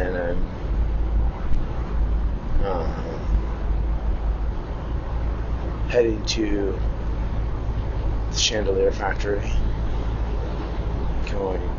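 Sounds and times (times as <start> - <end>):
car interior rumble while driving: 0.0 - 11.7
person murmuring: 2.6 - 3.4
speech: 6.0 - 7.0, 8.4 - 9.7, 11.4 - 11.7.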